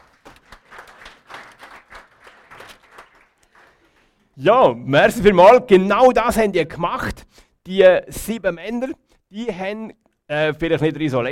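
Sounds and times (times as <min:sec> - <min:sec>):
audience applauding: 0:00.0 - 0:04.1
speech: 0:04.4 - 0:11.3.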